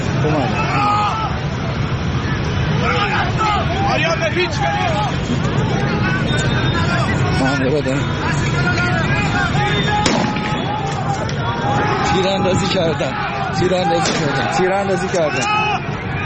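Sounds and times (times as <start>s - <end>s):
dense crowd shouting and chattering: 0.0s - 16.2s
speech: 0.2s - 0.9s, 4.0s - 10.2s, 12.1s - 15.6s
sharp cracks of gunfire: 10.0s - 10.6s.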